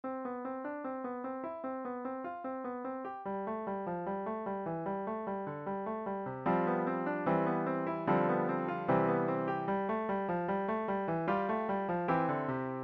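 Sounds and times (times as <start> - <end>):
piano playing two over one crossing: 0.1 - 12.8.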